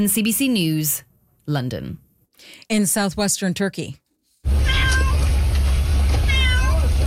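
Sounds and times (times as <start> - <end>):
speech: 0.0 - 4.6
cat meowing: 4.6 - 5.2, 6.2 - 6.9.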